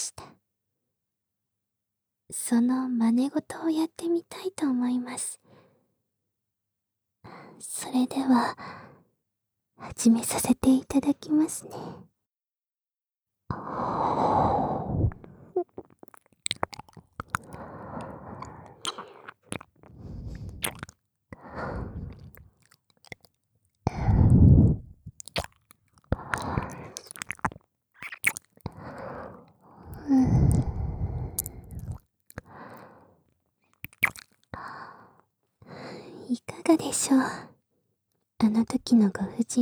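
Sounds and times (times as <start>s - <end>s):
speech: 2.3s - 5.4s, 7.6s - 9.0s, 9.8s - 12.1s, 13.5s - 14.8s, 36.7s - 37.5s, 38.4s - 39.6s
gentle breaths: 13.5s - 15.7s, 17.2s - 22.7s, 23.9s - 25.0s, 26.1s - 27.3s, 28.7s - 33.2s, 34.5s - 36.3s
wet licking on an ear in an ASMR session: 15.7s - 23.4s, 24.0s - 29.2s, 29.8s - 32.6s, 33.8s - 34.5s.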